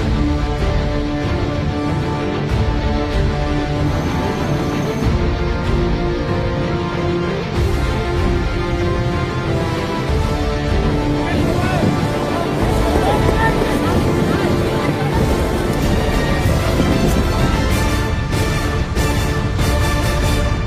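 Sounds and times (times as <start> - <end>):
water rushing: 0.0 - 20.3
rubber boat engines roaring during a military raid exercise: 1.8 - 19.0
wind rushing: 8.8 - 20.5.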